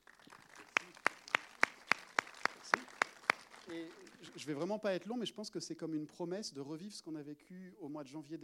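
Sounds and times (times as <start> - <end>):
hand claps at a festival event: 0.0 - 4.6
speech: 3.7 - 8.4.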